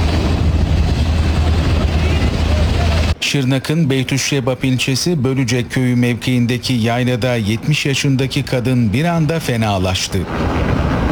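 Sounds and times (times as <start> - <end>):
military helicopter taking off from a highland pasture on a rescue flight: 0.0 - 3.2
speech: 3.3 - 10.9.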